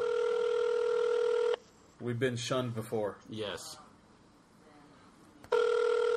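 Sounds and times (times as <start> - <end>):
ringback tone of an outgoing telephone call: 0.0 - 1.6, 5.5 - 6.1
speech: 2.0 - 3.9.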